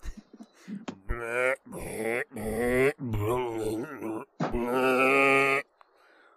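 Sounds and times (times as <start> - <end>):
person imitating a zombie burping and gurgling: 0.8 - 5.7.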